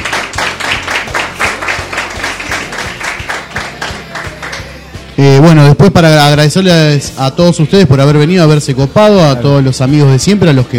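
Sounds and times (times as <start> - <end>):
audience applause at a live acoustic concert: 0.0 - 4.6
speech: 5.2 - 10.7.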